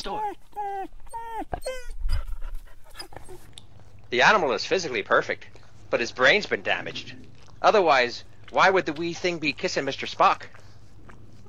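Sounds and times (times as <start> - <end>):
speech: 0.0 - 1.9, 4.1 - 10.6
small dog whimpering and yelping: 0.0 - 3.6
low rumbling background: 0.0 - 11.4
small dog panting: 0.0 - 11.4.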